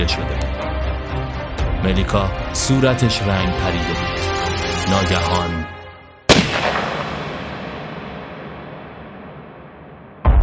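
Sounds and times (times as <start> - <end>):
speech: 0.0 - 1.2, 1.8 - 5.8
single loud sharp gunshot echoing: 6.3 - 10.3.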